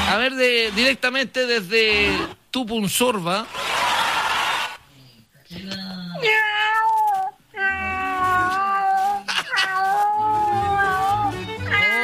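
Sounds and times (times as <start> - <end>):
speech: 0.1 - 3.8
raspy hoarse skinny scraggly cat meowing and caterwauling: 6.2 - 12.0.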